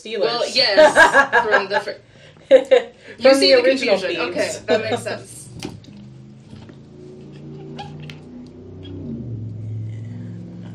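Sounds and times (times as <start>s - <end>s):
speech: 0.0s - 5.4s
laughter: 0.4s - 3.2s
car engine revving: 3.4s - 10.7s.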